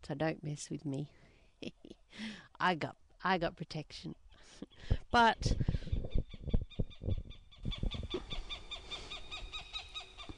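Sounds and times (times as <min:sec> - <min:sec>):
speech: 0:00.0 - 0:05.9
low thumping: 0:05.5 - 0:08.3
birds calling in the evening: 0:06.2 - 0:10.3.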